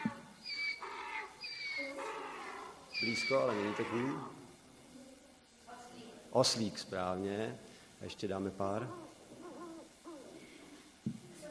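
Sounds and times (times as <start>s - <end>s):
owl hooting: 0.0s - 4.6s, 8.6s - 11.0s
speech: 3.0s - 4.4s, 6.3s - 9.1s.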